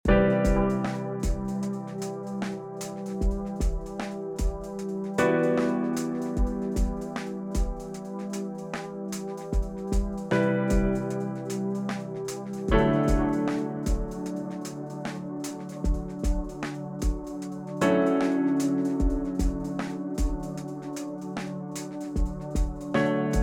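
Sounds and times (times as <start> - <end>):
smooth music loop: 0.1 - 23.4.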